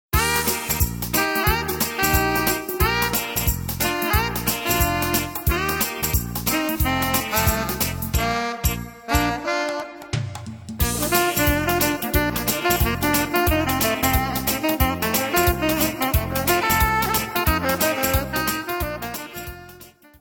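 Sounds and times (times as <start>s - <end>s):
guitar playing mambo: 0.2s - 20.1s.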